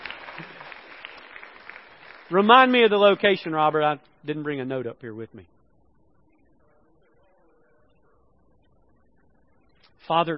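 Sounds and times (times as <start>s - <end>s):
audience clapping: 0.0s - 3.4s
speech: 2.3s - 5.5s, 10.1s - 10.3s.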